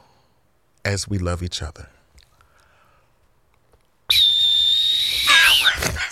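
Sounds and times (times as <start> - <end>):
speech: 0.9 - 2.0
whistle blast: 4.1 - 5.7.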